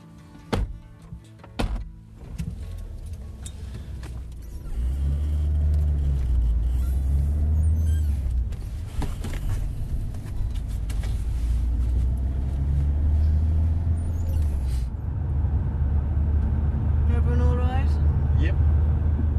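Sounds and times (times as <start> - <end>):
car engine rumbling while driving, heard from inside the cabin: 0.0 - 19.3
sharp clunks inside a car: 0.5 - 2.6.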